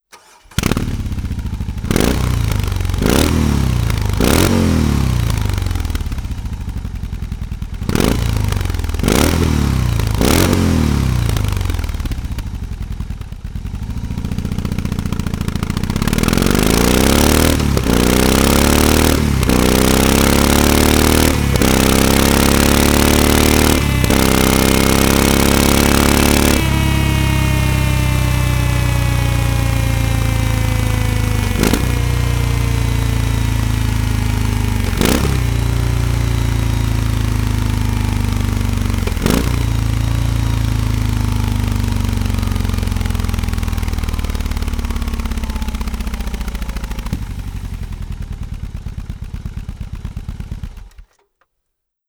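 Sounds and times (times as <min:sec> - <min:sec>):
BMW R18 Classic motorcycle: 0:00.0 - 0:51.3.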